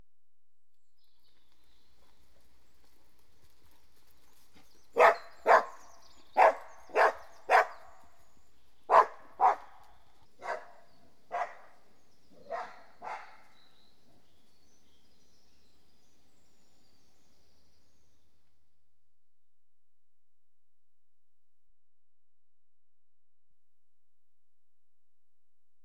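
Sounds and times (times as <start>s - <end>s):
Border Collies about 10 months old: 4.4s - 8.1s, 8.9s - 14.3s.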